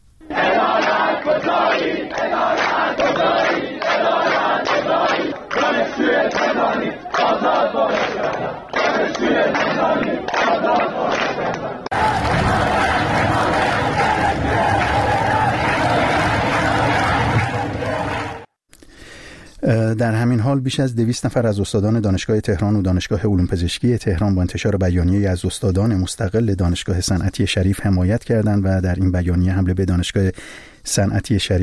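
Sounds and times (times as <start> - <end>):
university students at a protest rally in Tehran chanting slogans: 0.2 - 18.5
speech: 20.0 - 31.6.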